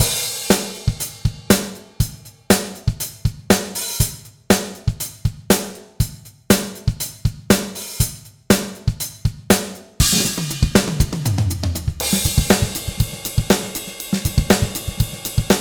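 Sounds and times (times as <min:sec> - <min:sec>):
drums in a drum room: 0:00.0 - 0:15.6.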